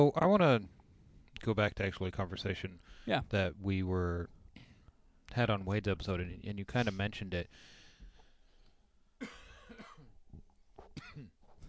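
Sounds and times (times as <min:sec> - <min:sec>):
speech: 0:00.0 - 0:00.8, 0:01.4 - 0:04.4, 0:05.3 - 0:07.8, 0:09.2 - 0:09.9
faint coughing from a tickle in the throat: 0:09.2 - 0:10.2, 0:10.8 - 0:11.6.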